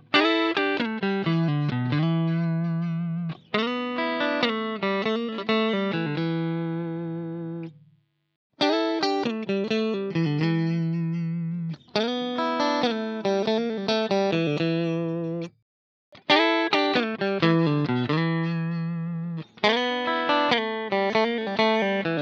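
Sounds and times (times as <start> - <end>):
clean electric guitar lead: 0.0 - 7.8, 8.6 - 15.5, 16.2 - 22.2.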